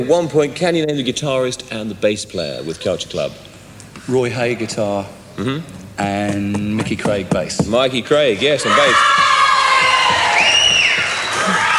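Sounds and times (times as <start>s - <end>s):
speech: 0.0s - 9.3s
large crowd screaming and cheering: 8.6s - 11.7s.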